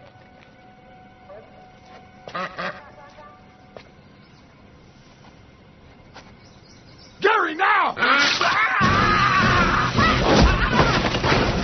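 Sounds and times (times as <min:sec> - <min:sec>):
steady hum: 0:00.0 - 0:11.6
speech: 0:02.3 - 0:02.8
duck quacking: 0:02.3 - 0:03.4.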